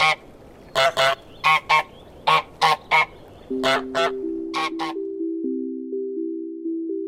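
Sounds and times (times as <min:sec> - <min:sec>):
French Toulouse goose giving squeaky honks: 0:00.8 - 0:05.0
steady low tone: 0:03.5 - 0:07.0.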